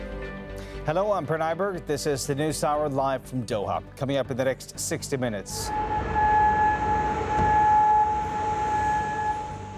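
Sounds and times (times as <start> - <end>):
speech: 0.9 - 6.0
air raid siren: 5.6 - 9.7.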